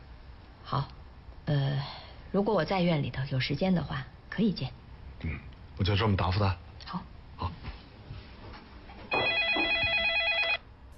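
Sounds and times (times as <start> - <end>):
speech: 0.7 - 7.6
office telephone ringing with electronic warble: 9.1 - 10.6.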